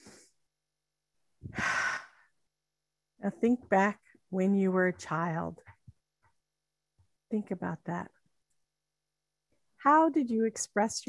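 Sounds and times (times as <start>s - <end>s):
deep breath inhale: 1.4s - 2.3s
speech: 3.2s - 5.7s, 7.3s - 8.2s, 9.8s - 11.0s.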